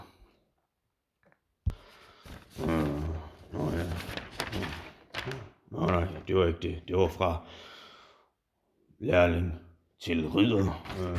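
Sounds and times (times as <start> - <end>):
paper rustling while searching for a sheet: 1.7 - 6.3, 10.8 - 11.1
speech: 5.9 - 7.7, 9.0 - 11.1.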